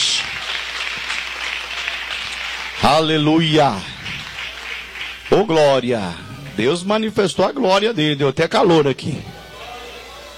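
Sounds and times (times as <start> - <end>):
church congregation clapping hands in praise: 0.0 - 7.0
speech: 2.8 - 3.9, 5.3 - 9.3.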